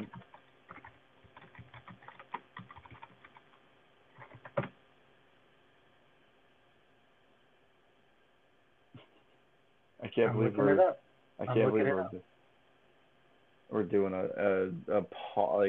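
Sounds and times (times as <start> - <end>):
typing on a computer keyboard: 0.0 - 4.8
speech: 10.1 - 12.3, 13.7 - 15.6.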